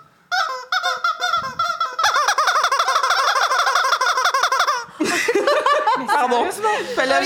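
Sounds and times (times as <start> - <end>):
squeaky rubber chicken toy squawking: 0.0 - 4.9
laughter: 4.9 - 7.0
speech: 6.2 - 7.2.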